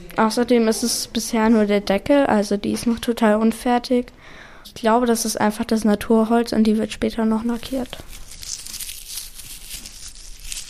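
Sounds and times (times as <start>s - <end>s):
speech: 0.2s - 8.2s
thin wood shavings crinkling and rustling in the hands: 7.6s - 10.6s.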